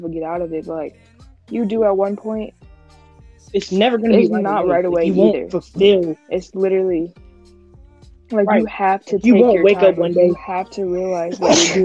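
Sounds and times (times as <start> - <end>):
speech: 0.1 - 2.7, 3.4 - 7.2, 8.3 - 11.8
person sneezing: 11.1 - 11.8.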